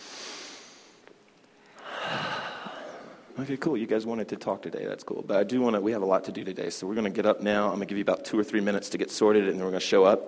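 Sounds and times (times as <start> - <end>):
deep breath in: 1.7 - 3.3
speech: 3.4 - 10.2.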